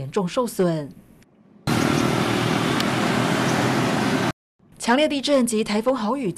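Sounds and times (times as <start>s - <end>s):
speech: 0.0s - 1.0s, 4.8s - 6.3s
military truck loaded with relief supplies rumbling on a damaged rough road in the Philippines: 1.7s - 4.3s.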